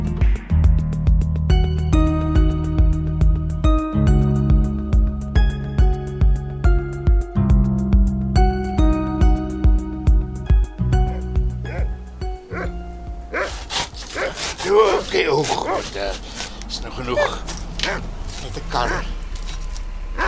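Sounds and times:
music: 0.0s - 16.6s
dog barking and yipping: 11.1s - 16.2s, 17.0s - 19.2s.

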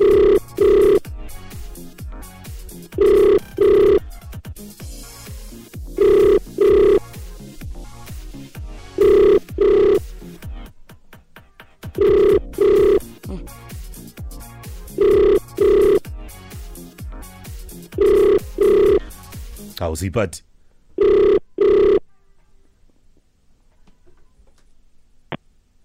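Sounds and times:
phone ringback tone on an outgoing call: 0.0s - 1.1s, 2.9s - 4.1s, 5.9s - 7.2s, 9.0s - 10.1s, 12.0s - 13.2s, 14.9s - 16.1s, 17.9s - 19.1s, 21.0s - 22.0s
speech: 19.9s - 20.5s.

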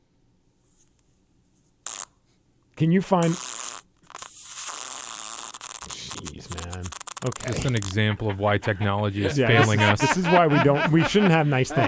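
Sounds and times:
recorded fart sound from a phone app through a small tinny phone speaker: 1.8s - 2.2s, 3.2s - 8.1s
speech: 2.8s - 3.6s, 7.2s - 11.8s
laughter: 7.3s - 11.8s.

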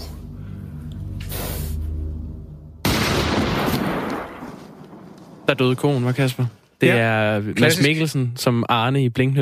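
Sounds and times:
low rumbling: 0.0s - 6.1s
gunshots shooting cows in a field: 2.8s - 5.5s
speech: 5.5s - 9.4s.

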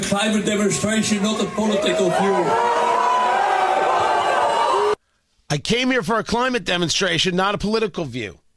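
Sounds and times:
speech: 0.0s - 2.8s, 5.5s - 8.4s
large crowd booing a man on stage: 0.4s - 5.0s
scattered shouts from the crowd: 0.7s - 5.0s.

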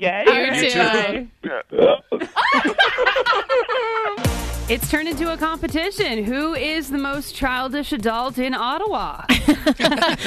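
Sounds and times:
speech: 0.0s - 2.7s, 4.7s - 10.2s
person burping loudly: 1.4s - 2.2s
laughter: 1.8s - 4.2s, 9.3s - 10.2s.

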